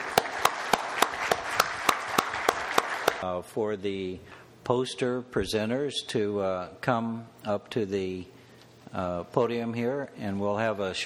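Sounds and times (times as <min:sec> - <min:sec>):
audience applauding: 0:00.0 - 0:03.2
crisp hand claps from one person: 0:00.0 - 0:03.2
speech: 0:03.2 - 0:11.0.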